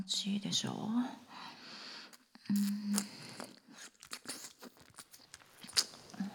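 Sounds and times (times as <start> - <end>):
speech: 0.2 - 1.3, 2.5 - 3.2
wet licking and mouth sounds: 2.1 - 6.3.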